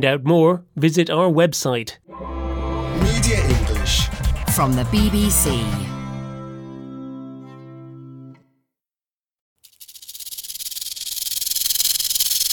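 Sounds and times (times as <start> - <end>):
speech: 0.0 - 2.4, 3.0 - 5.9
sustained tone: 2.1 - 8.4
rattlesnake shaking its keratin tail rattle: 9.6 - 12.5.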